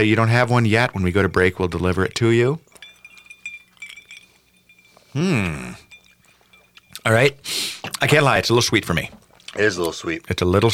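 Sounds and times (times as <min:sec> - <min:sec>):
speech: 0:00.0 - 0:02.7, 0:05.2 - 0:05.8, 0:07.1 - 0:10.7
glasses clinking in a toast: 0:00.3 - 0:09.6
person exclaiming: 0:05.2 - 0:05.8.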